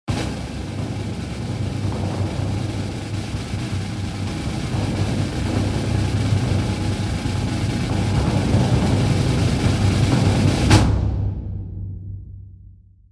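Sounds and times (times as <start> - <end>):
drum roll: 0.0 - 12.5.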